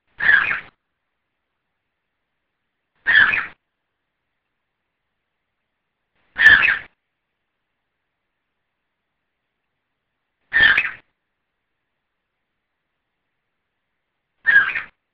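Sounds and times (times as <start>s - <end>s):
bird peeping: 0.2s - 0.7s, 3.0s - 3.6s, 6.4s - 6.9s, 10.5s - 11.0s, 14.5s - 15.0s.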